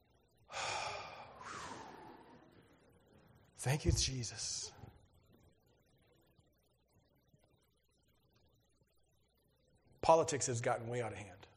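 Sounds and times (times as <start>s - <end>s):
audience drawing a big collective breath in and out: 0.5s - 2.9s
speech: 3.6s - 4.8s, 10.1s - 11.5s.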